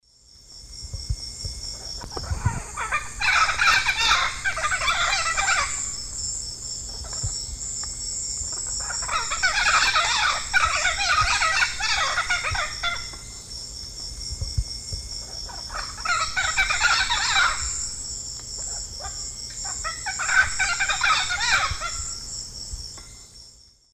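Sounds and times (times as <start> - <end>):
Ara severus pair calling in the Eastern Lowlands of South America: 1.9 - 6.2, 8.5 - 13.3, 15.4 - 18.0, 18.6 - 22.2.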